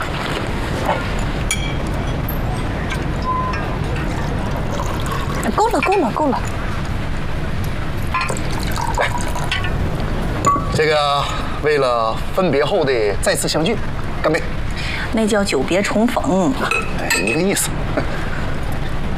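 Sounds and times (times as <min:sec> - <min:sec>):
busy noisy background: 0:00.0 - 0:19.1
liquor pouring into a glass: 0:04.1 - 0:05.8, 0:08.2 - 0:09.8.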